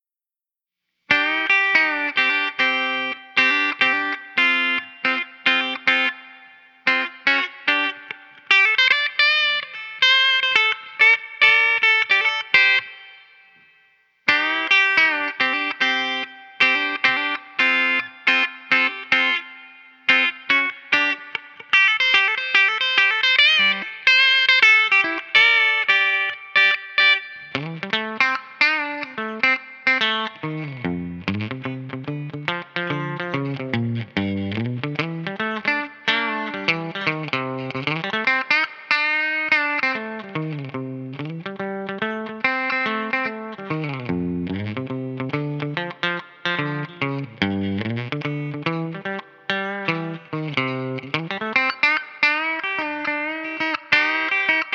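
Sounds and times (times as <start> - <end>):
electric guitar: 1.1 - 54.7.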